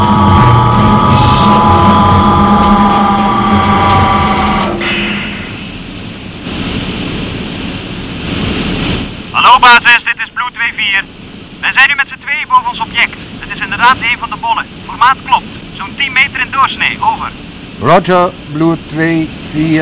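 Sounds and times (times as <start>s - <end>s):
helicopter engine droning with constant whine: 0.0s - 19.7s
voices: 9.4s - 19.7s
speech: 13.0s - 19.7s.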